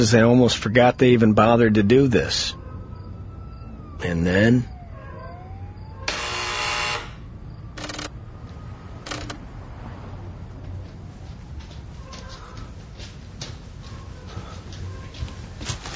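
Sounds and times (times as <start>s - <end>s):
speech: 0.0s - 2.6s, 4.0s - 4.7s
sale notification buzzer: 6.0s - 8.1s.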